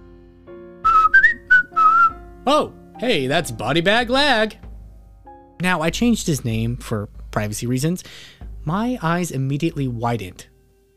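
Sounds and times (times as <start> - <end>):
corrections officer whistling a short bright tune while walking down a hallway: 0.8 - 2.3
speech: 2.5 - 4.6, 5.6 - 10.5.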